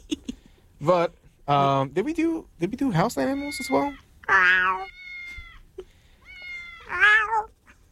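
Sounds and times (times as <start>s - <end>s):
speech: 0.8s - 5.0s
house cat meowing: 3.2s - 7.8s.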